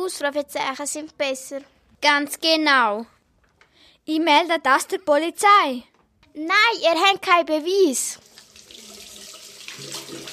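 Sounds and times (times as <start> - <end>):
speech: 0.0 - 3.2, 4.0 - 8.3
water running from a faucet: 8.2 - 10.3.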